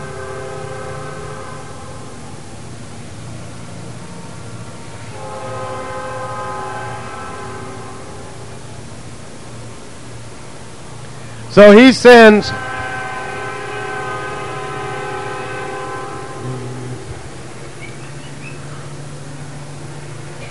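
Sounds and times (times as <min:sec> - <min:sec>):
loud train horn blasts: 0:00.0 - 0:02.3, 0:05.0 - 0:08.6, 0:11.5 - 0:18.0
train rumbling: 0:00.0 - 0:20.5
train wheels low roar: 0:00.0 - 0:20.5
speech: 0:11.6 - 0:12.6.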